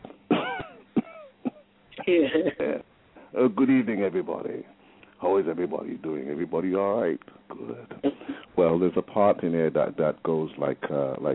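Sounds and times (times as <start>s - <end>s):
person imitating hoarse coughs of an old man: 0.3s - 2.8s, 8.0s - 8.4s
speech: 2.1s - 11.3s.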